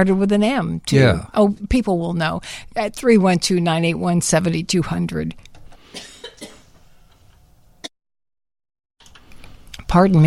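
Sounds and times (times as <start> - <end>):
speech: 0.0 - 6.1, 9.9 - 10.2
person coughing harshly: 5.9 - 6.7.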